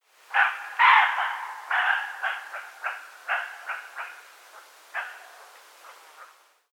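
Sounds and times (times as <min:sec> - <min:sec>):
roe deer alarm barking: 0:00.3 - 0:04.3, 0:04.9 - 0:05.6.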